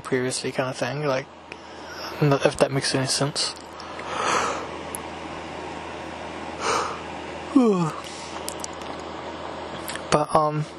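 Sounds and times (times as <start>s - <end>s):
speech: 0.1s - 1.5s, 2.2s - 3.7s, 7.6s - 8.0s, 10.1s - 10.7s
person yawning: 6.6s - 8.0s
voiced groan: 6.6s - 8.0s.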